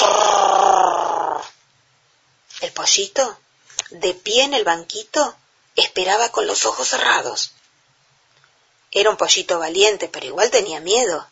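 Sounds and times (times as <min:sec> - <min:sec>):
rasping growl of a giant in a garden: 0:00.0 - 0:01.6
speech: 0:02.8 - 0:07.6, 0:08.9 - 0:11.3.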